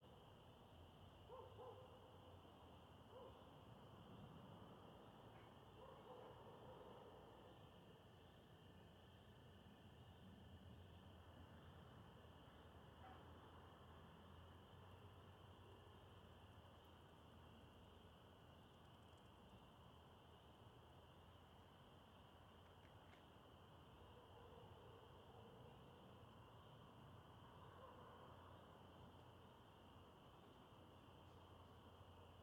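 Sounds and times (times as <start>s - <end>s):
crickets chirping in suburbia at dusk: 0.0s - 32.4s
traffic in suburbia at dusk: 0.1s - 32.4s
dog barking in suburbia at dusk: 1.3s - 2.2s, 3.1s - 3.5s, 5.3s - 7.5s, 13.0s - 13.3s, 24.0s - 26.0s, 27.6s - 28.4s.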